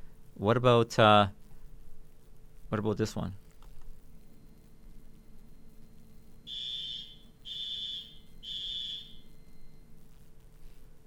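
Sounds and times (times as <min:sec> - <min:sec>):
low steady hum: 0:00.0 - 0:11.0
speech: 0:00.4 - 0:01.4, 0:02.7 - 0:03.4
loud harsh high-pitched alarm beeps: 0:04.3 - 0:10.0.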